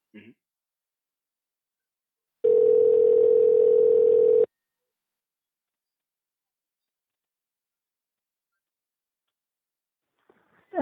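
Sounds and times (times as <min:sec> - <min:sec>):
phone ringback tone while placing a call: 0:02.4 - 0:04.5.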